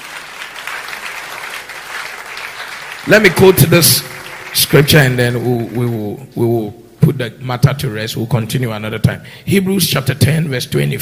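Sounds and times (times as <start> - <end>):
church congregation clapping hands: 0.0 - 6.1
speech: 3.0 - 11.0.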